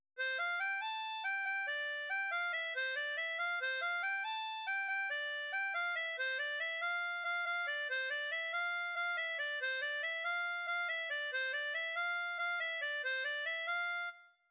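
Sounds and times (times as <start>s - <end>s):
folk tune played on harmonica in C: 0.2s - 14.3s.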